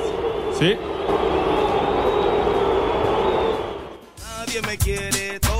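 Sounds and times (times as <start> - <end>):
large stadium crowd booing: 0.0 - 4.2
scattered applause: 0.0 - 4.2
speech: 0.6 - 1.3, 4.6 - 5.4.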